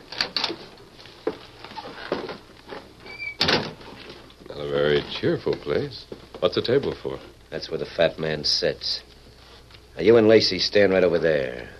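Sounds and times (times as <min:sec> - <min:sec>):
thin squeak of a door hinge: 0:03.0 - 0:03.6
shack door clattering thump: 0:03.4 - 0:03.8
speech: 0:05.0 - 0:09.1, 0:10.0 - 0:11.7.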